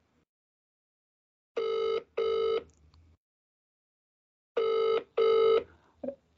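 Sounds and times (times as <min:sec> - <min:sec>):
telephone ringing tone over a speakerphone: 0:01.6 - 0:02.6, 0:04.6 - 0:05.7.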